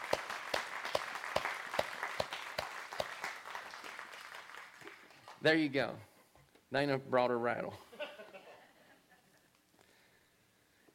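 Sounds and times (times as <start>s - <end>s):
audience applause: 0.0s - 5.4s
sharp evenly spaced clap: 0.0s - 5.4s
speech: 5.4s - 6.1s, 6.7s - 7.9s.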